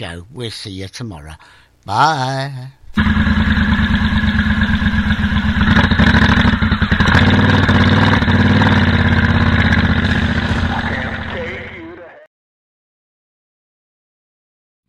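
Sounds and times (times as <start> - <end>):
speech: 0.0 - 4.2
motorcycle engine revving and idling: 3.0 - 12.0.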